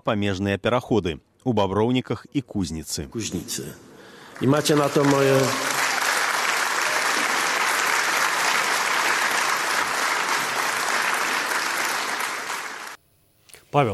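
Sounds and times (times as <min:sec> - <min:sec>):
speech: 0:00.0 - 0:05.8, 0:13.7 - 0:13.9
large crowd applauding at a business forum in Białystok: 0:04.0 - 0:13.0.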